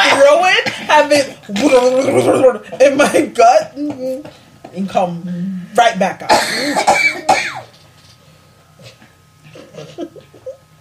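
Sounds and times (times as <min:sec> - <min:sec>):
speech: 0:00.9 - 0:07.6, 0:09.8 - 0:10.3
person coughing harshly: 0:06.3 - 0:07.7.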